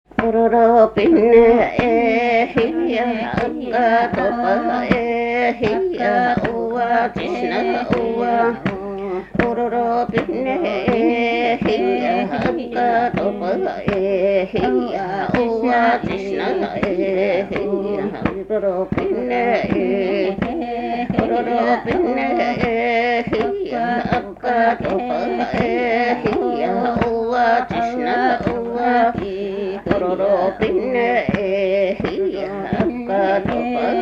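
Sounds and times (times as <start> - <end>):
polyphonic music: 0.1 - 33.9.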